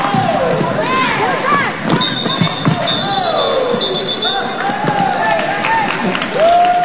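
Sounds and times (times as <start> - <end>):
indoor crowd roaring and shouting at roller derby bout: 0.0 - 6.8
referee whistle blast: 1.9 - 4.6.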